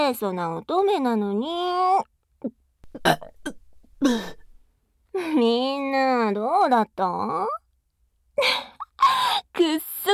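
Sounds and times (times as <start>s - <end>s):
speech: 0.0s - 4.4s, 5.2s - 7.6s, 8.4s - 10.1s
loud burp from a young woman: 2.8s - 4.6s.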